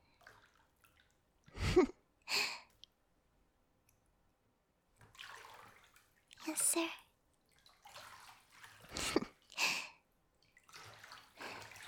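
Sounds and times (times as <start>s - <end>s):
bathtub water draining: 0.0s - 1.3s, 5.0s - 6.8s, 7.4s - 9.8s, 10.4s - 11.8s
speech: 6.8s - 7.0s.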